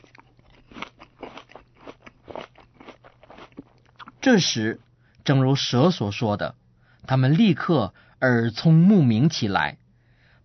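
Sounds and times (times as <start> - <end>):
fruit being bitten and chewed: 0.0 - 4.3
speech: 4.2 - 9.8.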